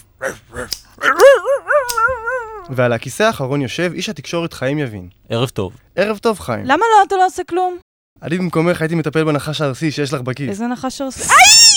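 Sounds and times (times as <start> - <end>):
speech: 0.2 - 0.8, 2.7 - 11.7
dog barking: 0.2 - 2.7.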